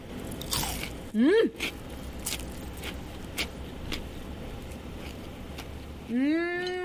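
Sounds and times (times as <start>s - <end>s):
low hum: 0.0s - 6.8s
crisp crunching bites into deep-fried small sardines with ginger: 0.3s - 4.1s.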